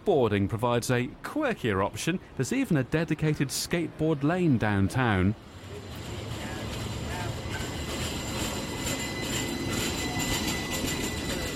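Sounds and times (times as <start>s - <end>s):
speech: 0.0s - 5.5s
light rail train running along its tracks: 1.2s - 11.5s
faint high squeal of light rail train: 7.1s - 11.5s.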